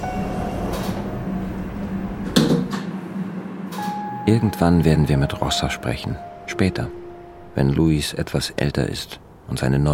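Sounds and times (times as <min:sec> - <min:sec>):
steady rumble of a train interior: 0:00.0 - 0:09.9
speech: 0:04.3 - 0:07.0, 0:07.6 - 0:09.9.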